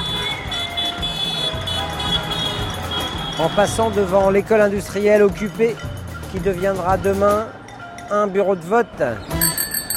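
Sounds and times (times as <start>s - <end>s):
car horns blaring in a busy street: 0.0s - 4.4s
dense rumble of passing traffic: 0.0s - 9.9s
speech: 3.4s - 9.4s.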